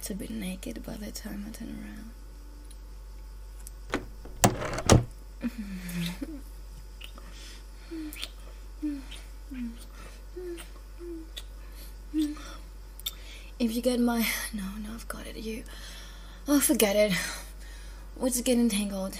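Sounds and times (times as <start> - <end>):
speech: 0.1 - 2.2, 5.4 - 6.6, 7.9 - 11.4, 13.6 - 17.4, 18.2 - 19.1
door being opened or closed: 3.9 - 5.1.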